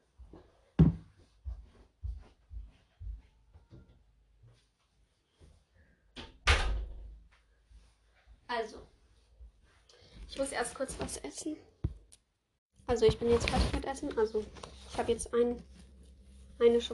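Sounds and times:
door closing thud: 0:06.2 - 0:07.1
speech: 0:08.5 - 0:08.9, 0:10.3 - 0:11.7, 0:12.9 - 0:15.8, 0:16.6 - 0:16.9.

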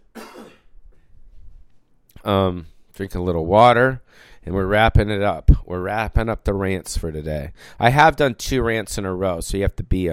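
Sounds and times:
cough: 0:00.0 - 0:00.8
speech: 0:02.2 - 0:10.1.

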